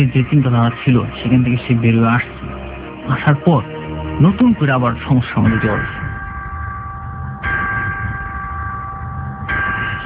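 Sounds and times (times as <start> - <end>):
speech: 0.0 - 2.4, 3.1 - 6.0
bell ringing to mark a programme break: 5.3 - 10.0.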